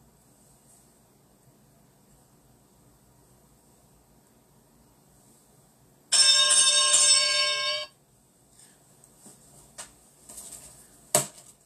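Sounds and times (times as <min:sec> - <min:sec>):
boxing ring bell ringing: 0:06.1 - 0:08.0.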